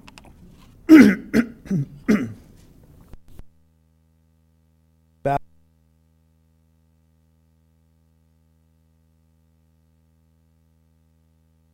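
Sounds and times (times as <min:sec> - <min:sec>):
person clearing throat: 0:00.9 - 0:02.5.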